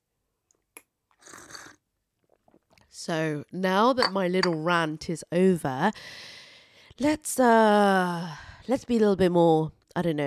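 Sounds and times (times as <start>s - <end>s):
person slurping a drink: 1.2s - 2.8s
speech: 3.0s - 6.4s, 7.0s - 10.2s
cup knock: 4.0s - 4.6s.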